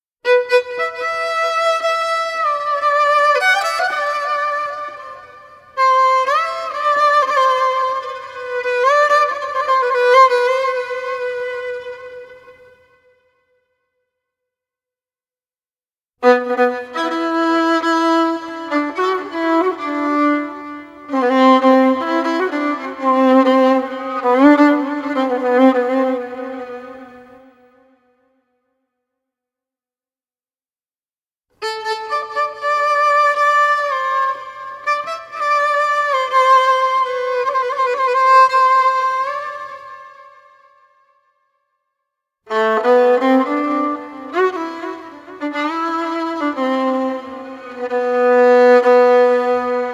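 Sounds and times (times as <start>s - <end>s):
instrumental violin music: 0.3s - 12.8s, 16.2s - 27.5s, 31.6s - 40.3s, 42.5s - 49.9s.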